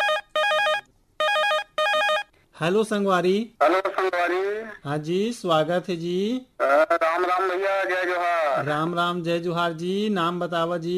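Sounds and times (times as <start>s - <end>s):
telephone ringtone chiming in warbling bursts: 0.0s - 2.4s
speech: 2.6s - 10.9s.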